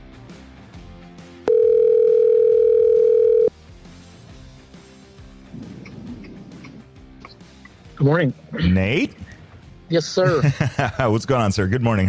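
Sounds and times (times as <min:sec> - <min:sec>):
electronic ringback tone of an outgoing phone call: 0:01.5 - 0:03.5
speech: 0:08.0 - 0:09.3, 0:09.9 - 0:12.0
laughter: 0:10.2 - 0:11.3.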